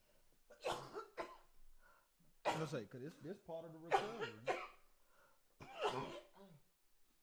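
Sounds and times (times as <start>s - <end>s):
raspy coughs from a person with a lingering cough: 0.5s - 1.6s, 2.4s - 2.8s, 3.9s - 4.9s, 5.6s - 6.6s
quiet breathing: 1.7s - 2.3s, 5.0s - 5.6s
speech: 2.6s - 4.7s, 5.9s - 6.2s.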